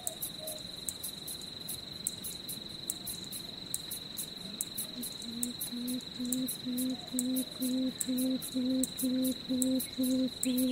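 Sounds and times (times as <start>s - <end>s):
constant high insect whine: 0.0s - 10.7s
Papuan frogmouth hooting: 5.3s - 10.7s.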